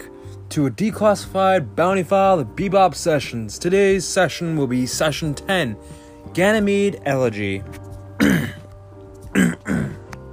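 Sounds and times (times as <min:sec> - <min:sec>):
speech: 0:00.5 - 0:08.6
person clearing throat: 0:08.2 - 0:08.7, 0:09.3 - 0:10.1.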